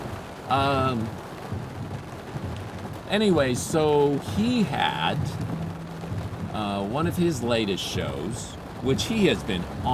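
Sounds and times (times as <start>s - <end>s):
heavy rain: 0.0s - 9.9s
speech: 0.5s - 1.7s, 3.1s - 5.6s, 6.6s - 9.9s
voiced sound: 2.4s - 9.9s.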